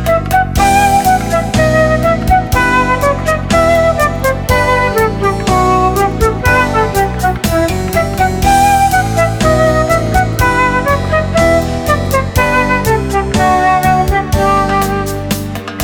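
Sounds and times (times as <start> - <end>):
flute playing a bourree: 0.1 - 15.8.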